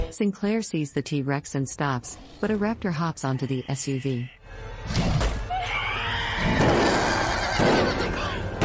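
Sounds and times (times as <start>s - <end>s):
speech: 0.2s - 5.0s
horse whinnying: 5.5s - 8.5s.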